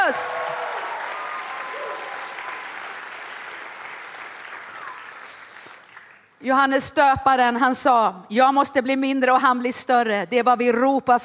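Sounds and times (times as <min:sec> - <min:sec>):
large crowd cheering with shouts and whoops: 0:00.0 - 0:05.6
large crowd clapping: 0:00.0 - 0:06.4
speech: 0:00.1 - 0:00.4, 0:06.4 - 0:11.2.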